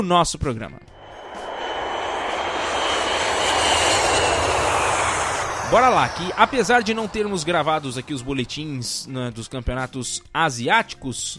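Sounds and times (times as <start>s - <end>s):
speech: 0.0s - 0.9s, 5.7s - 11.3s
airplane engine roar: 0.9s - 9.3s.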